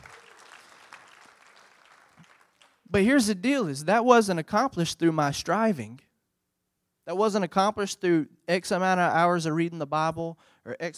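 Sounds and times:
audience applause: 0.0s - 2.8s
speech: 2.9s - 6.1s, 7.1s - 10.9s.

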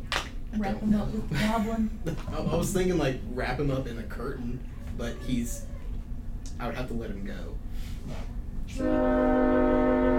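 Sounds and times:
speech: 0.6s - 5.7s, 6.6s - 9.7s
passing train horn blast: 8.7s - 10.1s.

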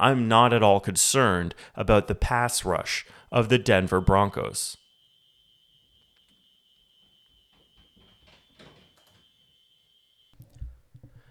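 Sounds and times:
speech: 0.0s - 4.8s
fire alarm blaring a high-pitched tone: 4.1s - 10.4s.

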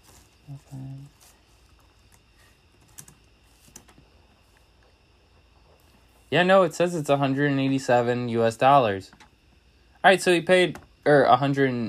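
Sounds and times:
speech: 0.5s - 1.3s, 6.3s - 9.2s, 10.0s - 11.8s
computer keyboard typing: 2.8s - 4.0s.

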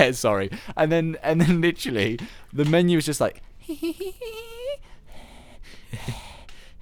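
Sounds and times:
speech: 0.0s - 4.9s
laughter: 3.6s - 4.8s, 5.9s - 6.3s
person imitating creepy heavy breathing from a menu screen: 4.1s - 6.7s.

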